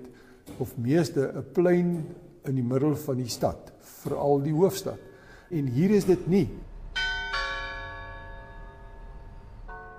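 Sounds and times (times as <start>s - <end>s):
speech: 0.0s - 6.7s
large clock tower bell ringing: 7.0s - 9.9s.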